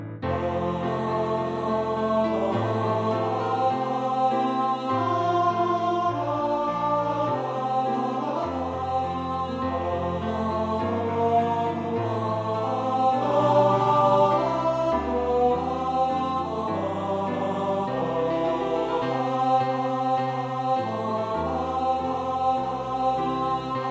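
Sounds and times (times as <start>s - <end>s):
tenor singing: 0.3s - 23.8s.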